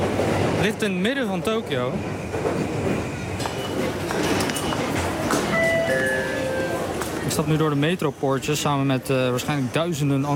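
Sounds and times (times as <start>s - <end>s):
rail and train noise at busy Shinjuku station in Tokyo: 0.0s - 10.3s
speech: 0.6s - 2.6s, 7.4s - 10.3s
sustained high tonal ring: 5.5s - 6.9s.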